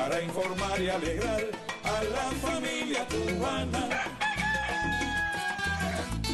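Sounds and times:
speech: 0.2 - 4.3
rooster crowing: 3.8 - 6.2.

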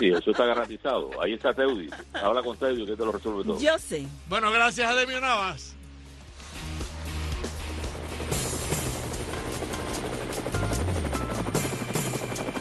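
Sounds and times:
laughter: 0.0 - 2.8
speech: 0.0 - 5.8
helicopter rotor blades thudding: 7.8 - 12.5.

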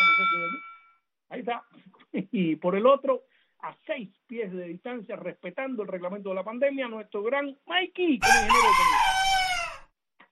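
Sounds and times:
speech: 1.4 - 9.4
rooster crowing: 8.2 - 9.9.

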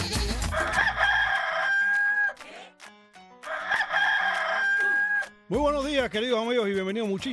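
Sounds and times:
rooster crowing: 0.1 - 2.3, 3.5 - 5.3
speech: 5.6 - 7.2.

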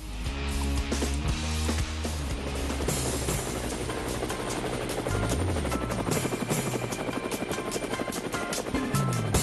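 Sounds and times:
helicopter engine whine: 1.0 - 9.4
helicopter rotor blades thudding: 1.1 - 9.4.

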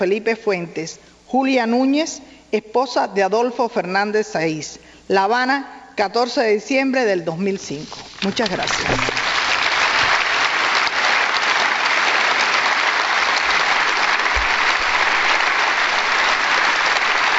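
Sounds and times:
speech: 0.0 - 9.1
standing ovation applause from a large crowd in a parliament chamber: 8.5 - 17.3.

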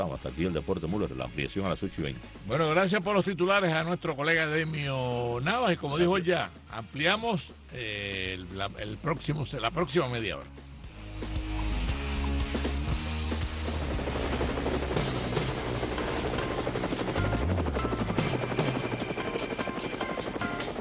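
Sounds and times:
speech: 0.0 - 11.4
helicopter roaring: 12.2 - 20.7.

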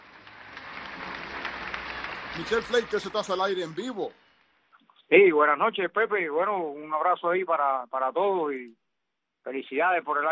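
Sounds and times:
crowd applause: 0.0 - 4.1
speech: 2.4 - 4.2, 5.1 - 8.8, 9.4 - 10.3.

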